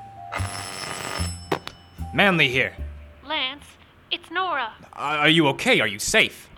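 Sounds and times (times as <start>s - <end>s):
telephone ringing in a loud bright bell burst: 0.3s - 2.2s
speech: 2.1s - 6.5s.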